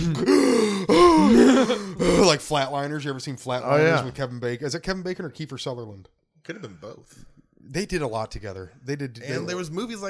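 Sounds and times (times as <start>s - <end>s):
voice imitating a choking gasp from snoring: 0.0s - 2.4s
speech: 2.5s - 10.0s.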